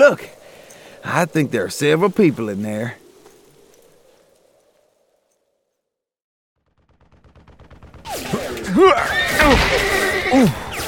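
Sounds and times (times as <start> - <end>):
speech: 0.0 - 0.4, 1.0 - 3.0, 8.8 - 10.6
bursts of gunfire: 6.6 - 10.0
horse shrieking and whinnying: 8.1 - 10.8.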